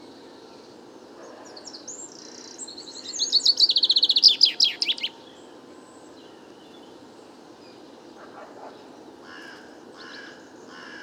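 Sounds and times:
chaffinch courtship song in a woodland park: 0:02.1 - 0:05.2.

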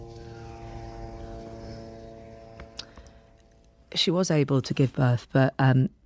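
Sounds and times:
drones humming overhead during a war: 0:00.0 - 0:04.1
speech: 0:04.0 - 0:06.0.

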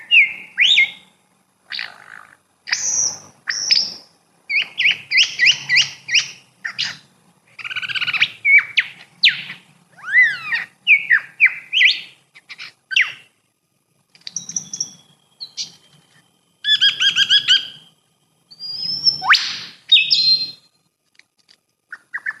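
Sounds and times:
lyrebird singing in Neerham State Forest, Victoria: 0:00.0 - 0:01.1, 0:02.7 - 0:07.0, 0:07.6 - 0:13.3, 0:14.3 - 0:16.0, 0:16.6 - 0:17.9, 0:18.5 - 0:20.8, 0:21.9 - 0:22.3.

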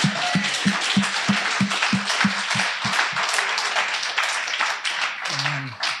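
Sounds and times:
voices: 0:00.0 - 0:03.9, 0:05.2 - 0:05.9
crowd applauding: 0:00.0 - 0:05.9.

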